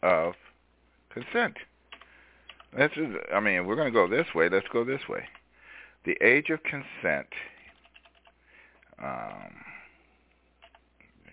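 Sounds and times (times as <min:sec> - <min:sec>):
speech: 0:01.2 - 0:01.7, 0:02.7 - 0:05.4, 0:06.0 - 0:07.5, 0:09.0 - 0:09.7
computer keyboard keystrokes: 0:01.9 - 0:02.7, 0:07.7 - 0:08.4, 0:10.6 - 0:10.8.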